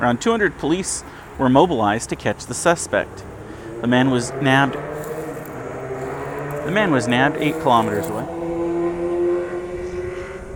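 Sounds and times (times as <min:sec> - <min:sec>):
speech: 0:00.0 - 0:05.1, 0:06.6 - 0:08.4
very loud motorcycle engine passing: 0:02.4 - 0:10.5.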